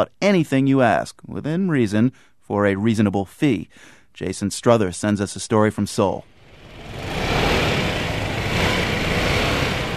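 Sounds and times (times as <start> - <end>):
speech: 0.0 - 6.3
motorbike with a large box on the back revving in Seoul South Korea: 6.4 - 9.9.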